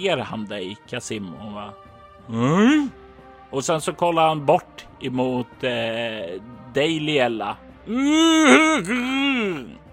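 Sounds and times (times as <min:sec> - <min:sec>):
speech: 0:00.0 - 0:09.8
man's drawn-out throaty groan: 0:02.3 - 0:03.0, 0:07.9 - 0:09.8.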